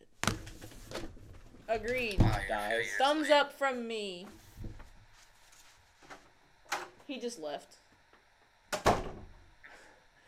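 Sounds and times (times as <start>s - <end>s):
speech: 1.7s - 4.4s, 7.1s - 7.8s
door swinging shut with a double thud: 8.8s - 9.3s.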